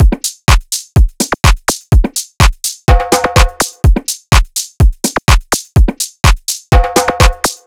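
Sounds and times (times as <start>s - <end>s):
drum loop at 125 BPM: 0.0s - 7.6s.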